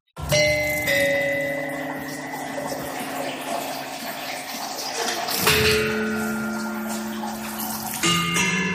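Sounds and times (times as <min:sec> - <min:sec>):
barberófono instrument playing sustained bell-like metallic tones: 0:00.2 - 0:08.7.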